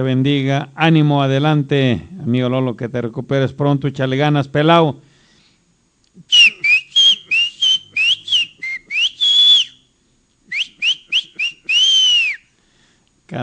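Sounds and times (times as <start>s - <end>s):
speech: 0.0s - 5.1s
person whistling a lively tune: 6.3s - 9.8s, 10.5s - 12.5s.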